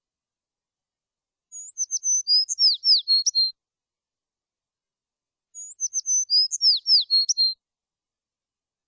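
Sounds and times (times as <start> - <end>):
small sparrow singing: 1.5 - 3.6, 5.4 - 7.7.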